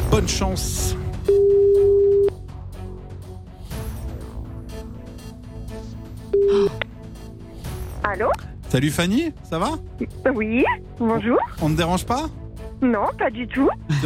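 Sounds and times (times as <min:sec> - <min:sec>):
speech: 0:00.1 - 0:01.0, 0:08.1 - 0:14.0
telephone line tones as a call is placed: 0:01.3 - 0:02.3, 0:06.4 - 0:06.8.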